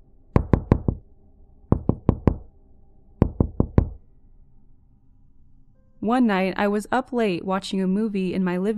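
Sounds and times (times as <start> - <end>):
sharp rhythmic knocking on a door: 0.4 - 1.0, 1.7 - 2.5, 3.2 - 4.0
speech: 6.0 - 8.7.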